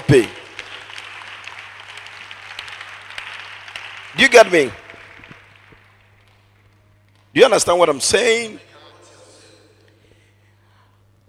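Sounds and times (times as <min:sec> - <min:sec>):
crowd clapping: 0:00.0 - 0:07.4
speech: 0:00.1 - 0:00.4, 0:04.2 - 0:04.8, 0:07.4 - 0:08.7.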